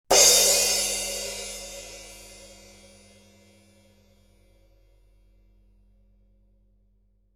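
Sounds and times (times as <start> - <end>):
16-inch crash cymbal: 0.1 - 5.4.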